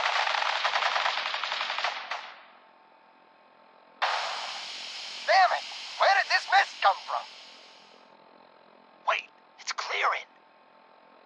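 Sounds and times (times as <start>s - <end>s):
machine gun fire as police open fire: 0.0s - 2.5s, 4.0s - 4.6s
low hiss: 4.0s - 8.1s.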